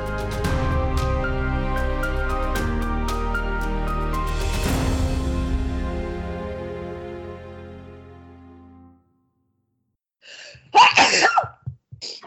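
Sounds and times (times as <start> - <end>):
closing music bed: 0.0 - 9.2
person sneezing: 10.3 - 12.2.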